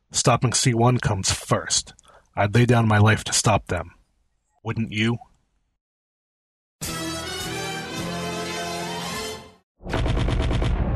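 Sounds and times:
speech: 0:00.2 - 0:04.0, 0:04.6 - 0:05.3
blaster fire: 0:09.8 - 0:10.9
explosions: 0:09.8 - 0:10.9.

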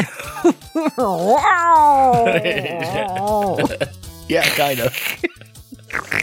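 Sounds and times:
speech: 0:00.0 - 0:05.3
person's voice imitating a cat-bear growl with yowling bursts and a wavering cry: 0:00.8 - 0:03.9
laughter: 0:02.0 - 0:05.5.

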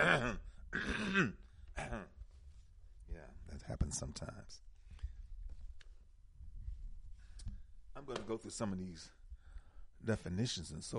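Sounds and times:
speech: 0:00.0 - 0:02.0, 0:03.7 - 0:04.7, 0:08.0 - 0:09.2, 0:10.0 - 0:10.9
throat clearing: 0:00.0 - 0:02.2.

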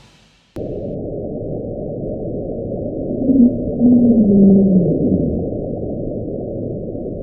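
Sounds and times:
steady murky underwater rumble recorded by hydrophones: 0:02.3 - 0:07.2
drawn-out underwater moaning tones recorded by hydrophones in the Equatorial Pacific Ocean: 0:03.1 - 0:06.2.

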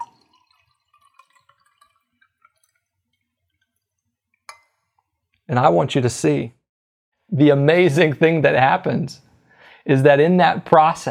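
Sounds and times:
glass clinking: 0:00.0 - 0:02.8, 0:04.5 - 0:05.1
liquid pouring from a jar: 0:00.0 - 0:05.5
speech: 0:05.5 - 0:06.6, 0:07.3 - 0:11.0.

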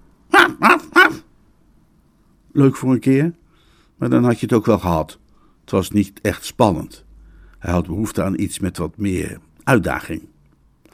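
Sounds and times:
dog barking loudly: 0:00.3 - 0:01.3
speech: 0:02.6 - 0:03.4, 0:04.0 - 0:07.0, 0:07.6 - 0:10.3.

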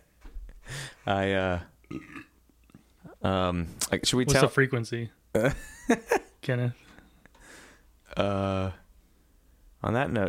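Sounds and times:
faint breathy sounds: 0:00.5 - 0:01.1, 0:06.8 - 0:08.0
speech: 0:01.0 - 0:02.2, 0:03.2 - 0:06.8, 0:08.2 - 0:08.8, 0:09.8 - 0:10.2
loud drawn-out burp: 0:01.8 - 0:02.4.

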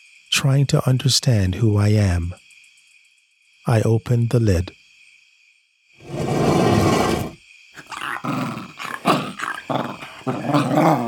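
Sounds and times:
speech: 0:00.4 - 0:02.4, 0:03.7 - 0:04.8
dog growling and snarling: 0:06.1 - 0:11.0.

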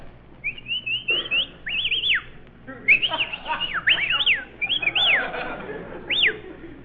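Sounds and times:
low hum: 0:00.0 - 0:06.8
shrill whistles to hail a taxi: 0:00.4 - 0:05.4, 0:06.1 - 0:06.5
laughter: 0:02.7 - 0:06.8.

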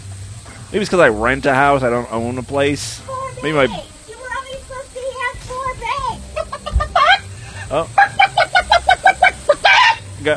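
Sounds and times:
speech: 0:00.7 - 0:03.9, 0:07.7 - 0:08.1
woman imitating a chicken clucking: 0:06.2 - 0:07.3, 0:08.0 - 0:10.1
laughter: 0:06.3 - 0:10.3.

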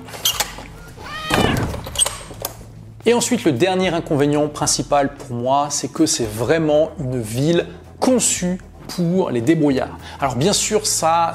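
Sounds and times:
cat meowing to come in: 0:00.8 - 0:02.1
sharp knocks and thumps: 0:00.9 - 0:02.5
speech: 0:03.0 - 0:11.3.

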